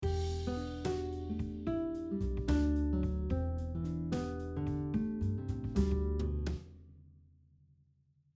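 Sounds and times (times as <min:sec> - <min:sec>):
guitar playing E minor scale in descending 6th intervals: 0:00.0 - 0:06.4.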